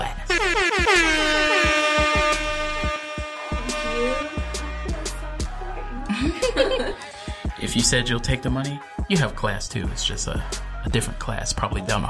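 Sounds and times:
air horn blasts sliding in pitch: 0.3 - 5.5
laughter: 5.8 - 7.4
speech: 7.8 - 12.0.

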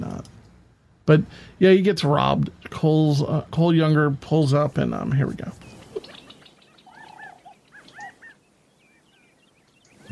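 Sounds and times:
speech: 1.1 - 5.6
birds chirping and whistling: 5.6 - 10.1.

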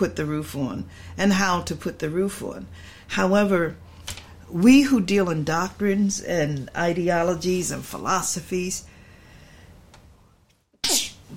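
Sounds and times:
speech: 0.0 - 8.9
single loud sharp breathy sneeze: 10.8 - 11.3.

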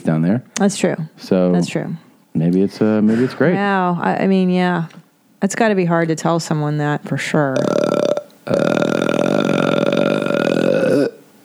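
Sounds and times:
speech: 0.1 - 8.9
long loud burp after eating dog food: 7.4 - 11.4.

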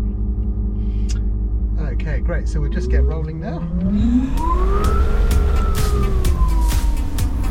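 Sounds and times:
steady low rumble: 0.0 - 7.4
speech: 2.0 - 5.1
electric motor driving a propeller whining: 2.5 - 7.4.

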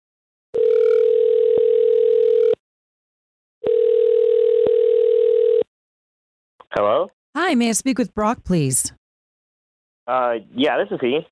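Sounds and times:
telephone ringback tone of an outgoing call: 0.6 - 2.6, 3.6 - 5.6
speech: 6.8 - 9.0, 10.1 - 11.2.

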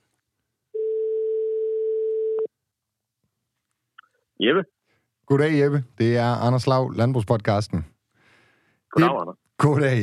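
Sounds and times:
ringback tone from an outgoing phone call: 0.8 - 2.5
speech: 4.4 - 7.9, 8.9 - 10.0.

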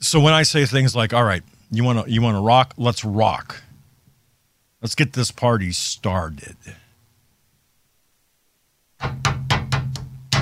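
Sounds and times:
speech: 0.1 - 3.6, 4.8 - 6.8, 9.0 - 9.3
knocking on a wooden table: 9.0 - 10.4.

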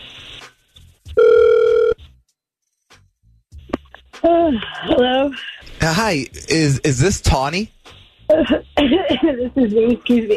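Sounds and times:
ringback tone of an outgoing phone call: 1.2 - 2.0
speech: 4.5 - 10.3.

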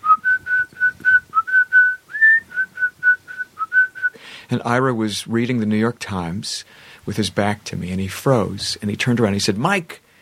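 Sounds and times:
person cataloging phonograph records whistling a bright steady melody: 0.0 - 4.2
speech: 4.5 - 10.0.

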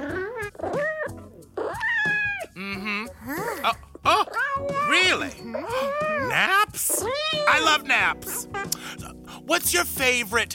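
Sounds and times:
pet cat meowing: 0.0 - 2.6, 4.1 - 8.7
speech: 9.5 - 10.5.

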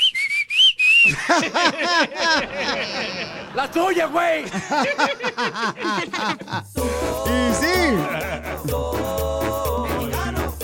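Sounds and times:
catcall whistle: 0.0 - 1.2
several people laughing: 1.0 - 8.8
speech: 1.0 - 9.6.

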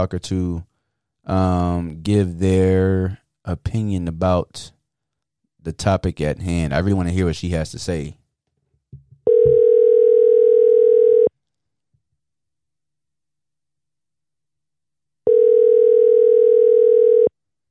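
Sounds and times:
speech: 0.0 - 4.8, 5.6 - 8.2
telephone ringback tone while a call waits for an answer: 9.3 - 11.3, 15.3 - 17.3.

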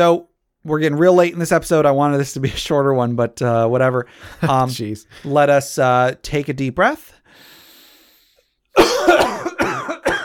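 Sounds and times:
speech: 0.0 - 7.5
harsh coughing: 8.7 - 10.2.

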